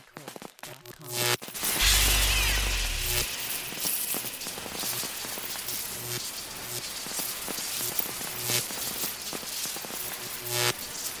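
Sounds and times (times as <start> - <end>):
long electric hum: 1.1 - 10.7.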